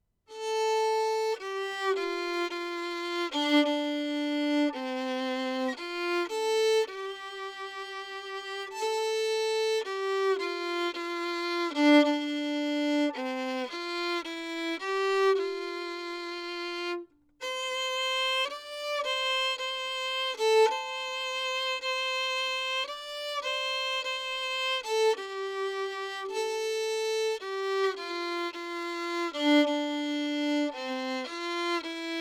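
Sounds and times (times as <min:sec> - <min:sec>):
lyrical violin recorded with cardioid microphone 24cm from F hole: 0:00.3 - 0:32.1.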